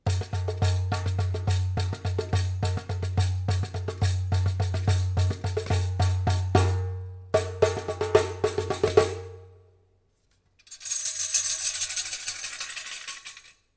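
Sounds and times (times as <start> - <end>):
darbuka drum: 0.0 - 9.6.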